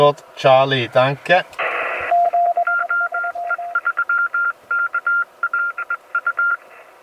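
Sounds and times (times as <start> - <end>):
speech: 0.0 - 1.6
faint radio hiss: 0.0 - 7.0
Morse code beeps from CW radio stations confirming an emergency radio call: 2.1 - 6.6.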